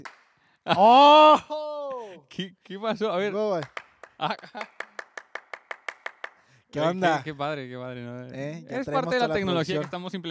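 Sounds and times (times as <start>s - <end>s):
sharp hand claps switching coloured lights in a church: 0.0s - 0.4s, 3.5s - 6.5s, 9.6s - 10.2s
speech: 0.7s - 1.6s, 2.3s - 4.8s, 6.7s - 10.2s.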